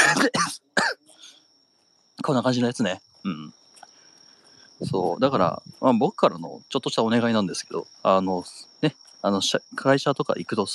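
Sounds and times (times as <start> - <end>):
person coughing with lingering cough after COVID-19: 0.0 - 1.0
speech: 0.2 - 0.9, 2.2 - 3.6, 4.8 - 10.7
faint raspy breath: 1.1 - 1.5, 3.8 - 4.8.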